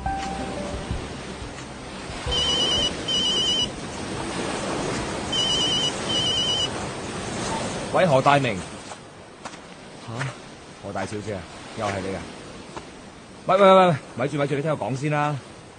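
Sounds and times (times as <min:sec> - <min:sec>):
rushing wind-and-rain-like noise during a storm scene: 0:00.2 - 0:15.7
telephone ringing: 0:02.3 - 0:03.7, 0:05.3 - 0:06.7
speech: 0:08.0 - 0:08.7, 0:10.9 - 0:12.4, 0:13.5 - 0:15.5.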